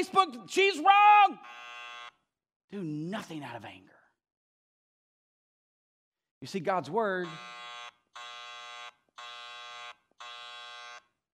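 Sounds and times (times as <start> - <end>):
speech: 0.0 - 1.7, 2.7 - 4.0, 6.4 - 7.6
loud harsh electronic buzzer blaring: 1.3 - 2.2, 7.2 - 11.2.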